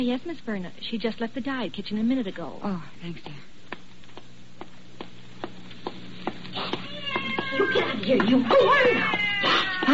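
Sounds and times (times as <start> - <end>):
speech: 0.0 - 3.5, 7.6 - 9.2
cat meowing inside a building: 6.8 - 9.9.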